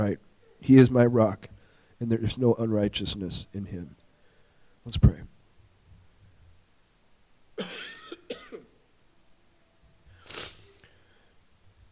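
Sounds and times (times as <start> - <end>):
speech: 0.0 - 4.0, 4.8 - 5.3
harsh coughs: 7.6 - 8.8.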